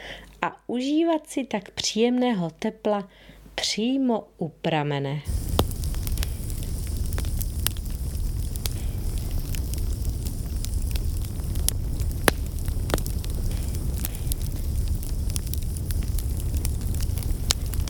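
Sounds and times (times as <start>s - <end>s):
speech: 0.4s - 5.5s
low rumble of burning wood in a stove: 5.3s - 17.8s
wood fire crackling inside an old tiled Tyrolean stove: 5.3s - 17.8s.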